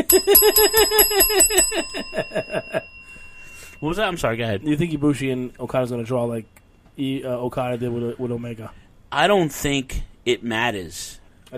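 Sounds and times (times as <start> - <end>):
bell ringing with bright metallic dings: 0.0 - 6.1
speech: 0.1 - 2.4, 3.8 - 11.5.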